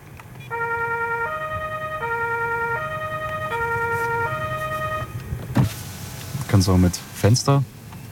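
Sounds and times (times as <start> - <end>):
emergency vehicle two-tone siren wail: 0.5 - 5.2
speech: 6.6 - 7.8.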